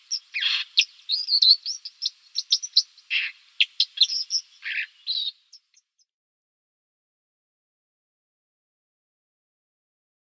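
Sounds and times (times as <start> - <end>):
White-throated dipper song with buzzy chunks, whistled slurs and clicks: 0.0 - 6.1.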